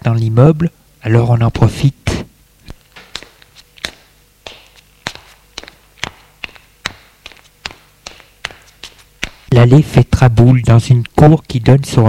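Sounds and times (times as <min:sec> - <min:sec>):
speech: 0:00.0 - 0:02.0, 0:09.6 - 0:12.0
footsteps of people climbing the stairs of an apartment building: 0:02.8 - 0:09.5.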